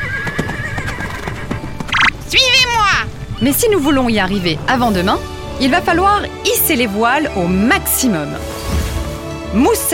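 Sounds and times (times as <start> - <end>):
horse neighing: 0.0 - 1.8
horse hooves clip-clopping: 0.0 - 4.4
speech: 3.4 - 8.5, 9.5 - 9.9.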